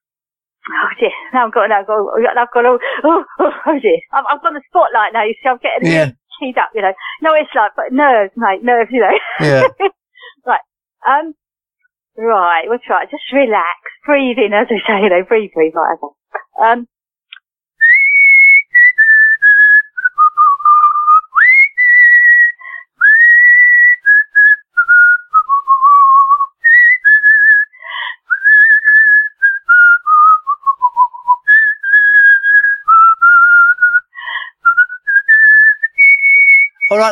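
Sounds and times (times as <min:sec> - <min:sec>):
speech: 0:00.7 - 0:11.4, 0:12.2 - 0:16.9, 0:37.0 - 0:37.1
laughter: 0:05.8 - 0:06.1, 0:09.2 - 0:09.8
person whistling a wavering melody: 0:09.4 - 0:09.7, 0:17.8 - 0:37.1.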